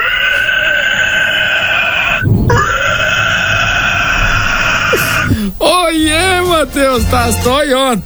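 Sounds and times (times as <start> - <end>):
pig low grunting gasp: 0.0 - 5.6
pig squealing: 0.0 - 6.6
speech: 6.6 - 8.0.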